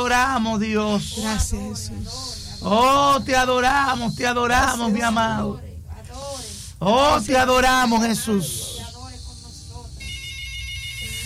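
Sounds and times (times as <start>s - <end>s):
voice or music: 0.0s - 10.0s
speech: 0.1s - 5.7s, 6.8s - 8.7s
incoming-call telephone ringtone: 10.0s - 11.2s.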